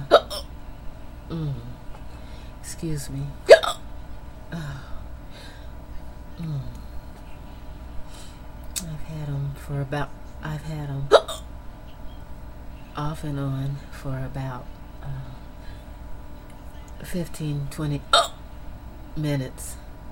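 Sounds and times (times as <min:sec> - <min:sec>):
hiccup: 0:00.1 - 0:00.5, 0:11.1 - 0:11.5
speech: 0:01.3 - 0:01.7, 0:02.8 - 0:03.5, 0:04.5 - 0:04.9, 0:06.4 - 0:06.7, 0:09.7 - 0:11.2, 0:12.9 - 0:15.4, 0:17.0 - 0:18.2, 0:19.1 - 0:19.8
soft low vocal murmurs: 0:01.3 - 0:01.9
quiet breathing: 0:01.3 - 0:02.6, 0:04.5 - 0:05.8, 0:06.4 - 0:08.5, 0:15.0 - 0:16.1.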